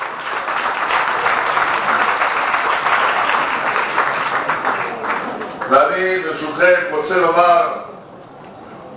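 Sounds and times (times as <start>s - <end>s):
audience applauding: 0.0s - 6.4s
speech: 6.0s - 7.8s.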